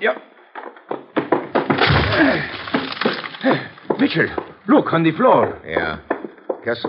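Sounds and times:
speech: 0.0s - 0.3s, 3.4s - 6.8s
clattering knocks: 0.6s - 6.8s
door being forced open by ramming: 1.2s - 3.6s.

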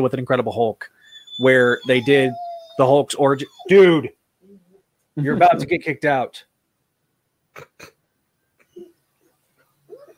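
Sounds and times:
speech: 0.0s - 4.2s, 5.2s - 6.5s, 7.6s - 7.9s
dog whining and grumbling: 1.0s - 4.8s, 8.6s - 9.3s, 9.9s - 10.1s.

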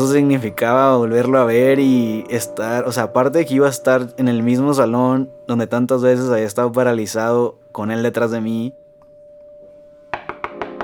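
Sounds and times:
speech: 0.0s - 8.8s
faint steady hum: 0.0s - 10.4s
sharp knocks on a door: 10.1s - 10.8s.

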